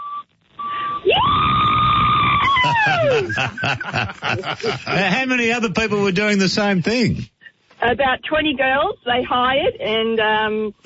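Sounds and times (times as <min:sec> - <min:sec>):
woman screaming like an excited band fan: 0:01.1 - 0:03.3
laughter: 0:02.4 - 0:05.4
speech: 0:03.2 - 0:10.8.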